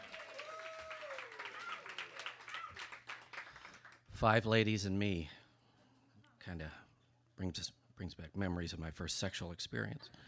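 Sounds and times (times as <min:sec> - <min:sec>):
cheering whoops: 0:00.0 - 0:03.0
audience applause: 0:00.0 - 0:04.1
speech: 0:04.2 - 0:05.4, 0:06.5 - 0:06.8, 0:07.4 - 0:10.2.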